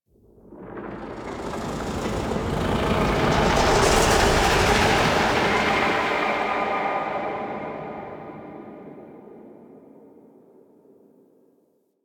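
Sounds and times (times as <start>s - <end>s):
pulsating whoosh: 0.8s - 9.2s.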